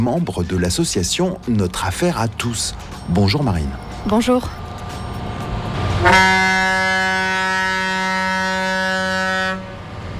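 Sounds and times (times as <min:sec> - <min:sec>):
speech: 0:00.0 - 0:04.6, 0:06.0 - 0:06.6
traditional wooden Loire barge horn blast: 0:06.0 - 0:10.0.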